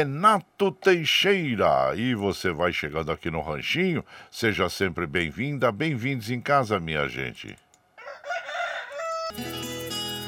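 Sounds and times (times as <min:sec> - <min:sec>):
speech: 0:00.0 - 0:07.6, 0:09.3 - 0:09.9
rooster crowing: 0:08.0 - 0:09.5
dense burst of music: 0:09.3 - 0:10.2.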